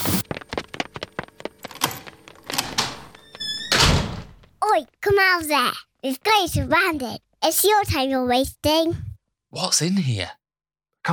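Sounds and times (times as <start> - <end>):
door thudding and banging: 2.5 - 4.5
speech: 4.8 - 10.4.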